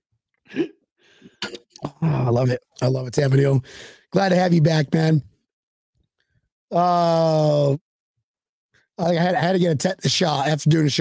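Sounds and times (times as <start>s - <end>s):
man coughing: 0.5s - 0.7s, 1.4s - 2.4s
speech: 2.0s - 5.3s, 6.7s - 7.8s, 9.0s - 10.9s.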